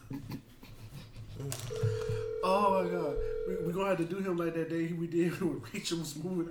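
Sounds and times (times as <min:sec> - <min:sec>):
speech: 0:00.1 - 0:00.4, 0:02.4 - 0:06.4
outgoing phone call ringing tone: 0:01.7 - 0:04.6.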